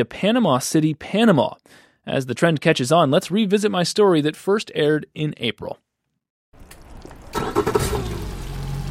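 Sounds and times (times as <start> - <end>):
speech: 0.0 - 5.8
small boat motor cranking and starting on the Jones Falls River: 7.3 - 8.9.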